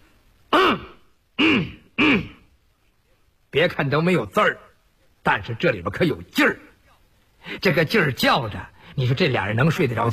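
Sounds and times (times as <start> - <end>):
storyteller imitating gruff throat-clearing coughs of two characters: 0.5 - 2.4
speech: 3.6 - 6.7, 7.4 - 10.1.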